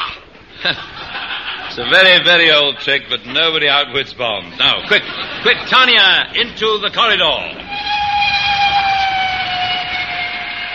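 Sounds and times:
laughter: 0.5 - 3.1, 4.6 - 6.3
speech: 0.6 - 1.1, 1.7 - 7.8
non-corridor train running on rails: 7.5 - 10.7.

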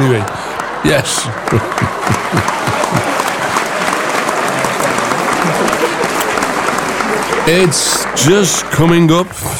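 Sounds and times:
laughter: 0.0 - 8.8
sizable crowd applauding: 0.0 - 9.5
speech: 0.1 - 3.1, 7.5 - 9.5.

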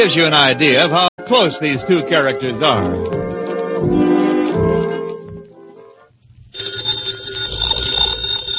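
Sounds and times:
speech: 0.0 - 4.0
telephone bell ringing: 6.6 - 8.5.

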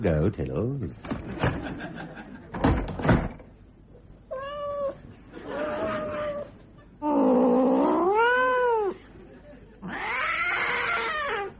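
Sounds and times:
speech: 0.0 - 1.7
cat meowing: 4.3 - 6.5, 7.4 - 9.0, 9.8 - 11.5.

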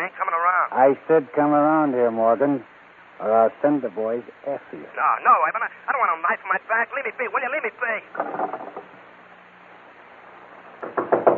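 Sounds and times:
speech: 0.0 - 8.9
knocking and pounding on a door: 10.8 - 11.3.

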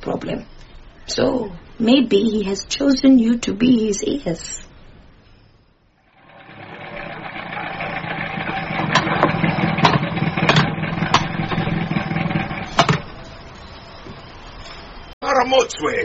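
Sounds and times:
speech: 0.2 - 4.7, 15.6 - 16.0
van engine running: 6.1 - 13.4.

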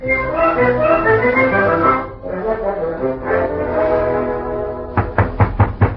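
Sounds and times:
sustained tonal music: 0.0 - 5.2
knocking on a wooden wardrobe door: 5.0 - 5.9.

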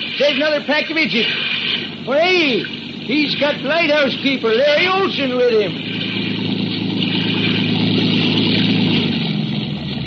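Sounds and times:
motor launch engine droning: 0.0 - 10.0
speech: 0.2 - 1.4, 2.0 - 5.9.

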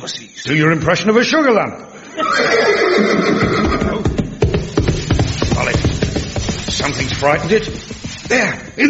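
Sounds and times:
speech: 0.0 - 3.7, 6.7 - 8.8
horse whinnying: 2.2 - 4.2
hooves shifting on hard ground: 3.2 - 8.8.

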